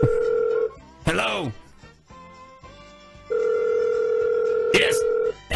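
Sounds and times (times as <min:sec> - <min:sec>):
telephone ringing on a call to a fast-food restaurant: 0:00.0 - 0:00.7, 0:03.3 - 0:05.4.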